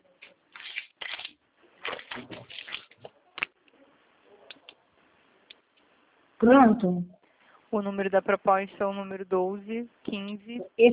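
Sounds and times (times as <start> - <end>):
rustling and handling of a sheet of paper and a pen: 0.2 - 3.5
speech: 6.4 - 10.9.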